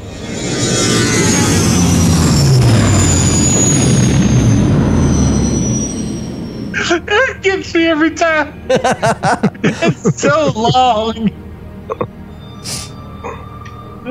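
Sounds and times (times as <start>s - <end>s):
spaceship taking off with sustained engine roar: 0.0s - 6.8s, 11.0s - 14.0s
sweeping whines: 0.0s - 14.0s
speech: 8.0s - 12.8s
laughter: 8.6s - 12.1s.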